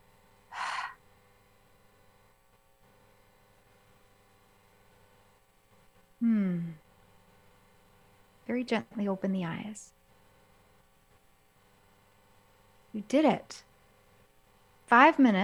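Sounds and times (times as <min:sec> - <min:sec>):
loud open-mouthed exhale with a voiced sigh falling in pitch: 0:00.5 - 0:01.0
breathy rush of a deep breath: 0:00.6 - 0:01.0
speech: 0:08.5 - 0:10.0, 0:13.0 - 0:13.7, 0:14.9 - 0:15.4.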